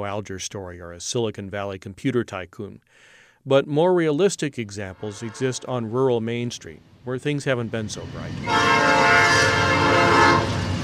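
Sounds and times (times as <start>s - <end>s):
speech: 0.0s - 10.5s
train horn blaring: 4.8s - 6.2s, 8.4s - 10.8s
rumble of a passing train: 4.8s - 10.8s.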